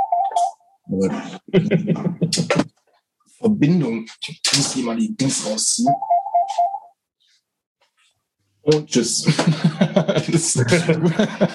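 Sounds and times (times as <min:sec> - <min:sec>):
short electronic telephone ring: 0:00.0 - 0:00.6, 0:05.9 - 0:06.9
speech: 0:00.9 - 0:02.7, 0:03.4 - 0:06.7, 0:08.6 - 0:11.5
laughter: 0:01.0 - 0:02.6, 0:09.1 - 0:11.5.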